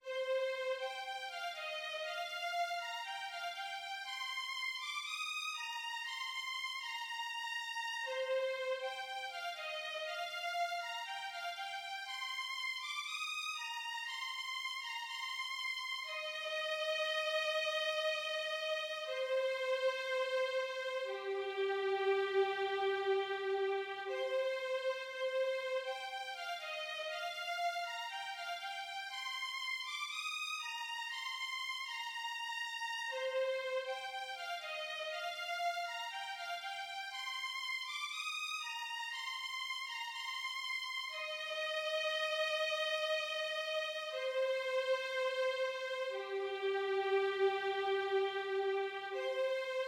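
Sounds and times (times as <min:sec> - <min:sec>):
violin melody: 0:00.0 - 0:49.8.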